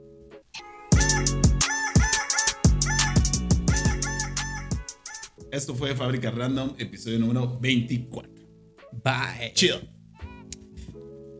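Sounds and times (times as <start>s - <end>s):
pitch-corrected rooster crowing: 0.9s - 5.4s
punchy electronic beat: 0.9s - 5.4s
speech: 5.5s - 10.0s.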